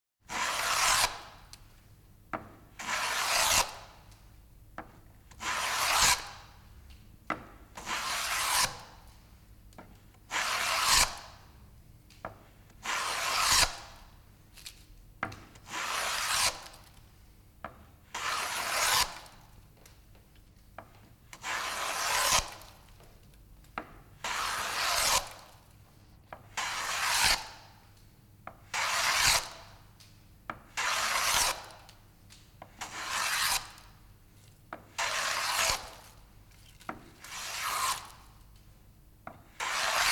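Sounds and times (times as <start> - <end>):
hand plane shaving wood: 0.3 - 1.1, 2.8 - 3.7, 5.4 - 6.2, 7.8 - 8.8, 10.3 - 11.2, 12.8 - 13.7, 15.7 - 16.7, 18.2 - 19.2, 21.4 - 22.6, 24.2 - 25.4, 26.6 - 27.4, 28.8 - 29.5, 30.8 - 31.7, 32.8 - 33.8, 35.0 - 36.0, 37.2 - 38.1, 39.6 - 40.1.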